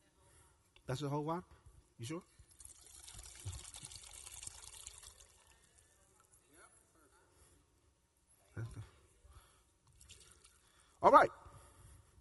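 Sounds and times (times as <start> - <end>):
speech: 0.9 - 2.4
one cup of water pouring into a pot: 2.5 - 6.1, 10.0 - 10.7.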